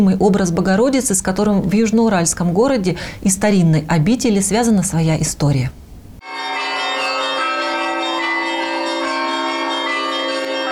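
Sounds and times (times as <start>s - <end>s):
speech: 0.0s - 5.8s
church bells of a convent pealing in Troitsk: 6.2s - 10.7s.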